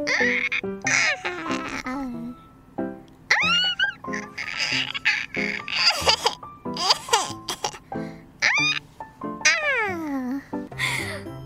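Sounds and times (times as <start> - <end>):
voice imitating a cartoon baby giggling with high-pitched squeals and coos: 0.0 - 2.3, 3.3 - 7.8, 8.4 - 8.8, 9.5 - 10.4.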